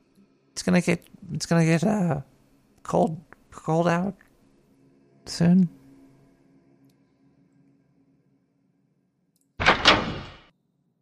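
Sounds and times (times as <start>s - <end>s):
speech: 0.6s - 4.2s, 5.3s - 5.8s
door shutting with a short double thud: 9.6s - 10.5s.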